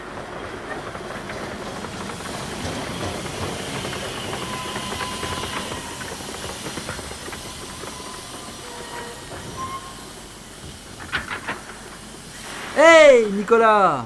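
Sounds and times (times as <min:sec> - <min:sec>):
rapid clacking: 0:00.0 - 0:12.2
TGV high-speed train pulling into a station platform: 0:00.0 - 0:14.0
thin train brake squeals: 0:02.0 - 0:11.2
speech: 0:12.8 - 0:14.0.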